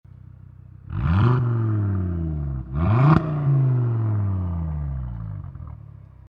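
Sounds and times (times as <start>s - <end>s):
Audi RS 3 Limousine 8Y exhaust system with open exhaust flap, throttle blip: 0.7s - 6.2s.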